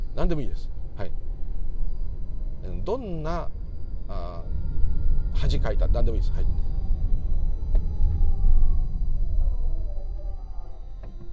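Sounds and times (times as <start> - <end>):
speech: 0.2 - 1.2, 2.6 - 4.5, 5.4 - 6.7
police siren wailing: 4.0 - 11.3.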